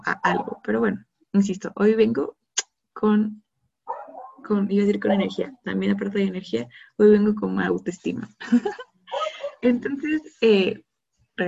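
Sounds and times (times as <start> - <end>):
speech: 0.0 - 2.4, 3.0 - 3.4, 4.4 - 8.9, 9.6 - 11.4
pet dog barking: 0.2 - 0.7, 3.9 - 5.4, 9.1 - 9.6
laughter: 8.4 - 9.6.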